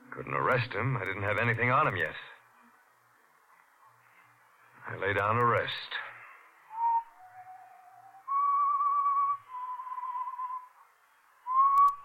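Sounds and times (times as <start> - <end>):
speech: 0.2 - 2.3, 4.9 - 6.1
person whistling a slow tune: 6.7 - 10.8, 11.4 - 12.0.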